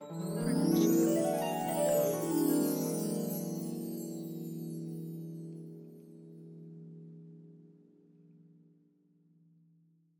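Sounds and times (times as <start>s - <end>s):
fantasy glissando: 0.0s - 5.1s.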